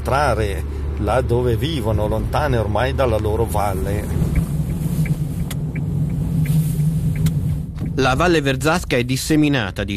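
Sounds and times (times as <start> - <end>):
speech: 0.0 - 4.3, 8.0 - 9.9
small Japanese car engine droning on a mountain hairpin road: 0.0 - 9.2
road noise: 0.0 - 9.9.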